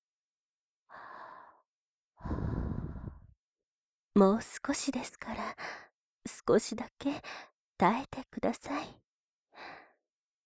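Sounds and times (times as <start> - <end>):
breath blown softly into the ear: 2.2 - 3.3
speech: 4.2 - 5.6, 6.4 - 9.0.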